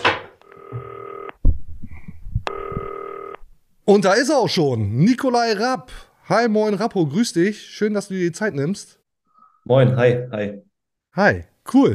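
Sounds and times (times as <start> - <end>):
electronic ringback tones of an outgoing FaceTime call: 2.5 - 3.4
speech: 3.9 - 9.0, 9.6 - 11.9.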